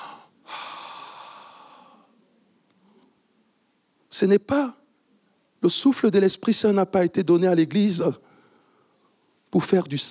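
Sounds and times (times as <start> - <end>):
quiet breathing: 0.0 - 3.4, 8.2 - 9.4
speech: 4.2 - 4.8, 5.6 - 8.3, 9.5 - 10.0.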